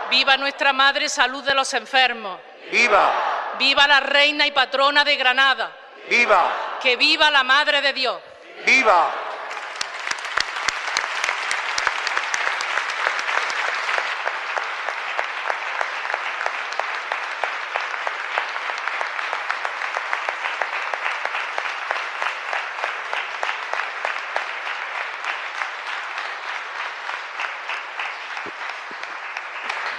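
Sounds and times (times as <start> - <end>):
speech: 0.1 - 9.2
large church audience applauding after Mass: 8.6 - 29.9.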